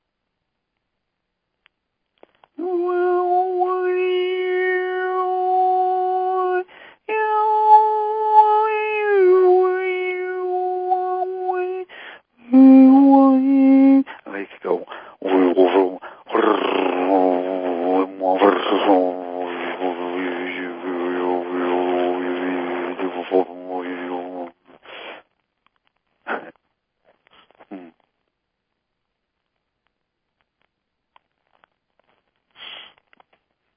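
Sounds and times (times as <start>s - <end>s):
voice imitating a pet cat meowing: 2.6s - 11.9s, 12.5s - 14.1s, 15.2s - 24.6s.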